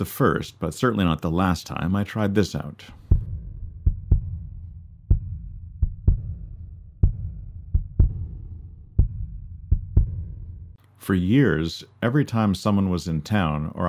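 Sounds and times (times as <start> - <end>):
speech: 0.0 - 3.0, 11.1 - 13.8
kick drum thumps in a heartbeat rhythm: 3.0 - 10.8
low droning hum: 3.0 - 10.8.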